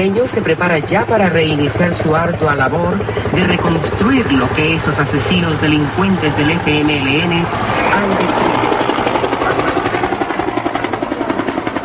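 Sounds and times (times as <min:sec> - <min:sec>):
speech: 0:00.0 - 0:08.7
helicopter rotor blades chopping and engine roaring overhead: 0:00.0 - 0:11.8.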